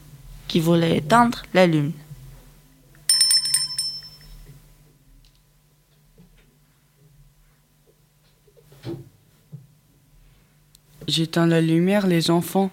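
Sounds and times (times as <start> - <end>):
speech: 0.5 - 2.0, 11.1 - 12.7
bright trilling bell ringing as page-turn cue: 3.1 - 4.4.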